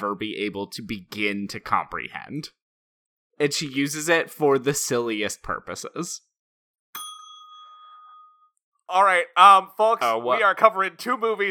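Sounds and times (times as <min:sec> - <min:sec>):
speech: 0:00.0 - 0:02.6, 0:03.4 - 0:06.3, 0:08.9 - 0:11.4
bell ringing: 0:07.0 - 0:08.6.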